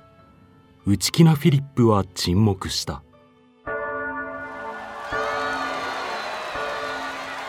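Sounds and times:
speech: 0.8s - 3.1s
wedding bells pealing through a town: 3.7s - 7.4s
crowd noise and cheering: 4.5s - 7.4s.

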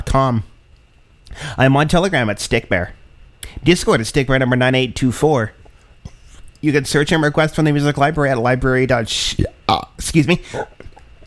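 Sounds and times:
speech: 0.1s - 0.5s, 1.3s - 5.6s, 6.6s - 10.8s
person belching: 9.4s - 11.2s.

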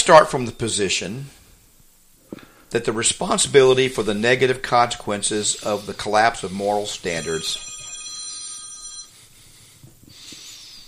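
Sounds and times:
speech: 0.0s - 1.4s, 2.7s - 7.7s
phone ringtone with bright high electronic tones: 6.6s - 9.3s.

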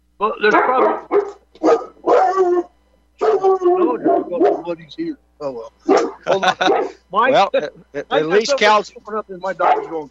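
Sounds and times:
speech: 0.2s - 1.4s, 4.7s - 10.0s
dog barking and yipping: 0.4s - 4.8s, 5.9s - 7.0s, 9.6s - 10.0s
laughter: 5.9s - 8.4s.

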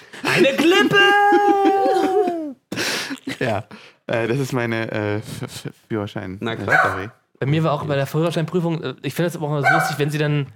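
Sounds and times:
laughter: 0.2s - 3.7s
speech: 0.4s - 1.7s, 3.4s - 10.5s
dog barking: 6.7s - 7.2s, 9.6s - 10.1s.

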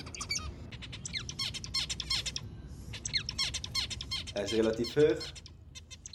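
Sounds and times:
low rumble: 0.0s - 6.1s
zebra finch song with buzzy nasal chirps: 0.0s - 6.1s
speech: 4.4s - 5.4s.

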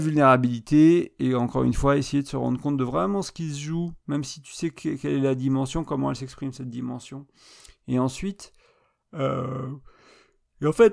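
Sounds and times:
speech: 0.0s - 9.9s, 10.6s - 10.9s
person yawning: 9.2s - 9.9s.

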